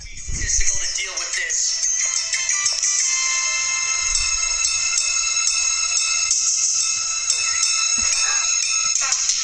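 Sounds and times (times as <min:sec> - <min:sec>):
low thumps: 0:00.0 - 0:01.0, 0:03.9 - 0:05.7
bright chiming synthesizer background music from a comedic TV scene: 0:00.9 - 0:09.4.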